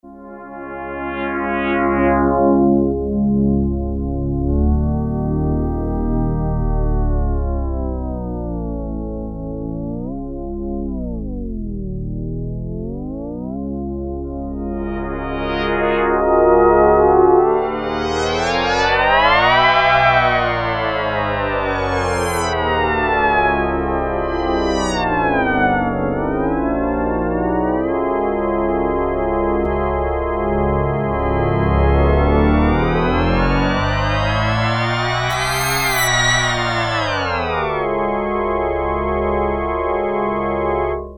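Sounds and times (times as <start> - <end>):
Yamaha DX7 synthesizer: 0.0 - 41.1.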